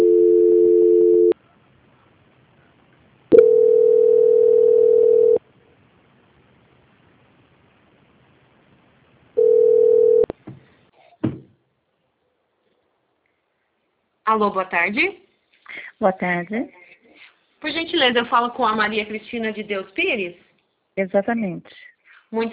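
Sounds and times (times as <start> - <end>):
telephone tones during call transfer: 0.0 - 1.4, 3.3 - 5.4, 9.4 - 10.3
speech: 14.3 - 16.8, 17.6 - 20.4, 21.0 - 22.5.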